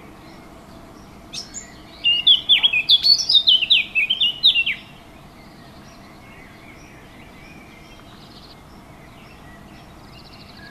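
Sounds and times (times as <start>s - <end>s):
warbler song: 0.0s - 10.7s.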